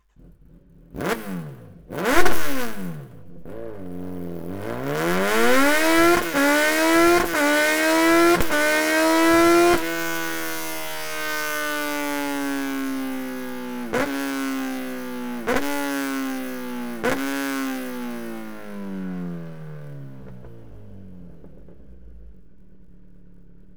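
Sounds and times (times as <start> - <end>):
Kawasaki Z900 motorcycle exhaust headers: 0.0 - 23.7.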